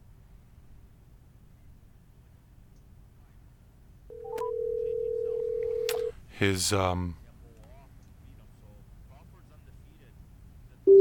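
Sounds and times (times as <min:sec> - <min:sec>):
telephone electronic dialing beeps: 0:04.1 - 0:05.9
telephone line click: 0:04.1 - 0:06.1
speech: 0:06.4 - 0:07.2.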